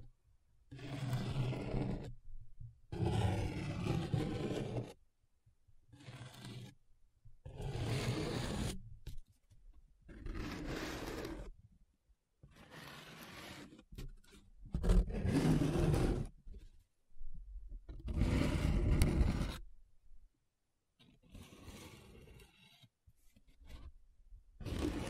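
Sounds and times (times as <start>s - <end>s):
paper tracing, scratching and rubbing: 0.7s - 2.1s, 2.9s - 5.0s, 5.9s - 6.8s, 7.5s - 8.8s, 10.1s - 11.5s, 12.5s - 16.3s, 18.1s - 19.6s, 21.0s - 23.9s, 24.6s - 25.0s.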